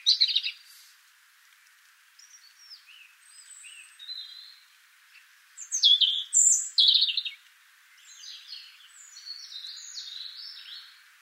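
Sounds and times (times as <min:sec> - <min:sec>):
European robin Erithacus rubecula giving soft whistles and warbled phrases: 0:05.6 - 0:07.4.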